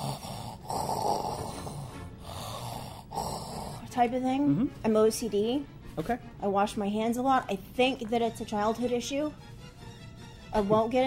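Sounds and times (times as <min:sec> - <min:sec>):
person imitating snoring with loud raspy breathing: 0:00.0 - 0:04.7
speech: 0:04.0 - 0:09.5, 0:10.5 - 0:11.0.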